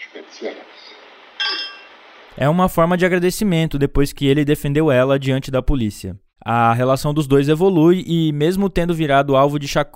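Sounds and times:
speech: 0.4s - 0.8s, 2.4s - 9.9s
champagne glasses clinking in a toast: 1.4s - 2.0s.

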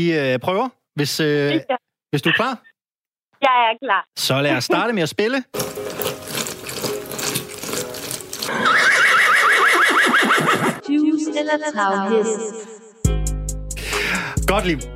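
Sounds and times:
speech: 0.0s - 2.7s, 3.4s - 6.0s, 10.9s - 13.2s, 14.1s - 14.9s
horse whinnying in a quiz jingle: 8.4s - 10.8s.

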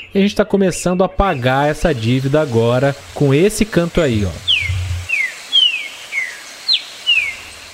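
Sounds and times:
speech: 0.0s - 4.5s
songbird singing descending whistled notes: 4.2s - 7.5s.

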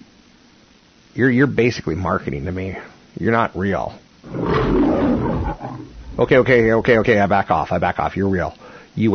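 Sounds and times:
speech: 1.2s - 9.1s
tiger roaring: 4.3s - 6.8s.

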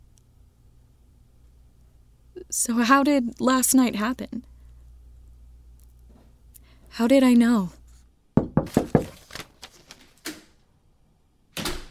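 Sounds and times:
speech: 2.4s - 4.5s, 7.0s - 7.8s
dull bump: 8.4s - 9.2s
loud knocking on a door: 8.4s - 9.2s.

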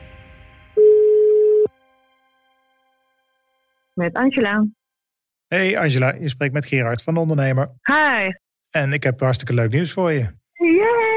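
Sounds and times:
steady electronic telephone ringing tone: 0.8s - 1.7s
speech: 4.0s - 4.8s, 5.5s - 11.1s.

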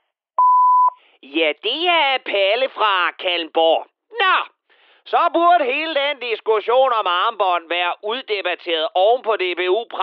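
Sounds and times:
electronic answering machine beep on a phone line: 0.4s - 1.0s
speech: 1.2s - 4.5s, 5.1s - 10.0s.

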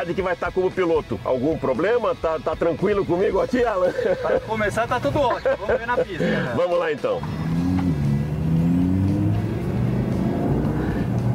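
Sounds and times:
speech: 0.0s - 7.4s
laughter: 3.6s - 6.8s
naturally aspirated V10 sports car engine accelerating: 7.2s - 11.3s.

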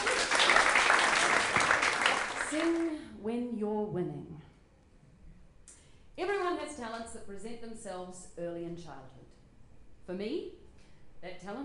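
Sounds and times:
audience applauding: 0.0s - 2.9s
speech: 6.2s - 9.4s, 10.1s - 10.6s, 11.2s - 11.6s.

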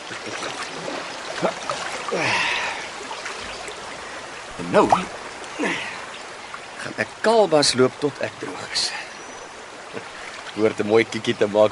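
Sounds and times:
water splashing and trickling: 0.0s - 11.7s
speech: 4.7s - 5.9s, 6.9s - 9.0s, 10.0s - 11.7s.

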